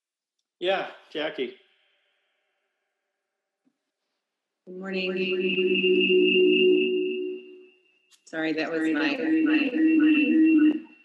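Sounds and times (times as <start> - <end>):
speech: 0.6 - 1.6, 4.7 - 6.8, 8.3 - 10.5
person speaking on a call with doubled voice: 4.7 - 5.7, 8.4 - 10.3
steady high-pitched whine on call audio: 4.7 - 7.8, 8.6 - 11.0.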